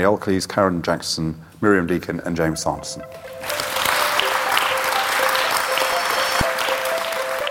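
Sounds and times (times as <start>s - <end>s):
speech: 0.0s - 3.7s
session audience applauding a panel: 3.2s - 7.5s.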